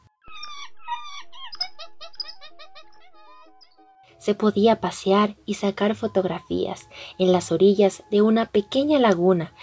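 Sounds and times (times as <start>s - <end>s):
monkeys screeching and chattering: 0.2s - 3.8s
speech: 4.2s - 9.6s.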